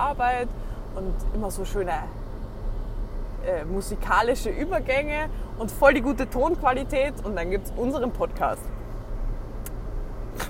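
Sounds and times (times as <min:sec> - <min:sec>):
speech: 0:00.0 - 0:02.3, 0:03.4 - 0:08.7
car interior road and engine drone while driving: 0:00.0 - 0:10.4.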